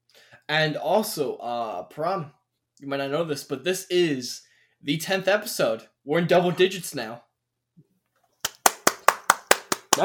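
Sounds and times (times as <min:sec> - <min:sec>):
speech: 0:00.5 - 0:07.3
single person hand clapping: 0:08.4 - 0:10.0.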